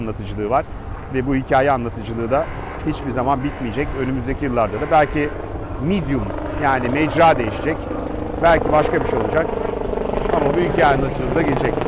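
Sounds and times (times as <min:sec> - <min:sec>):
helicopter flying past: 0:00.0 - 0:11.8
speech: 0:00.0 - 0:11.8.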